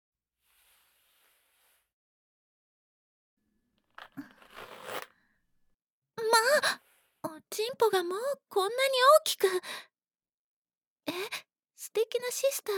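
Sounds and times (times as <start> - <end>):
trouser zipper being pulled down: 3.9 - 5.2
speech: 7.6 - 9.9, 11.1 - 12.7.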